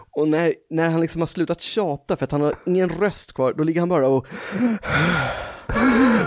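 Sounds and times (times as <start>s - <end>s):
speech: 0.2s - 6.2s
person imitating a man panting into a phone: 4.3s - 6.2s.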